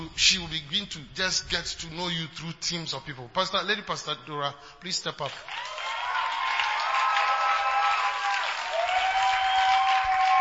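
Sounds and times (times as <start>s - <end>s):
speech: 0.1s - 5.8s
church congregation applauding: 5.2s - 10.4s.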